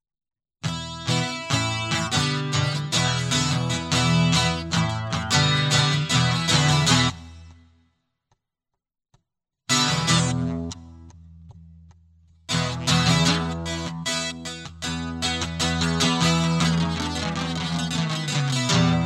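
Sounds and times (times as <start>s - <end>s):
guitars solo: 0.6s - 7.4s, 9.7s - 11.2s, 12.5s - 19.0s.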